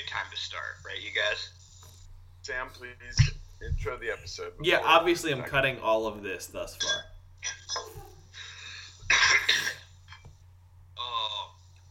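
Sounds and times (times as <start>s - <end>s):
low steady hum: 0.0s - 11.8s
speech: 0.1s - 1.6s, 2.4s - 8.1s
coughing: 6.8s - 8.3s, 9.0s - 10.2s.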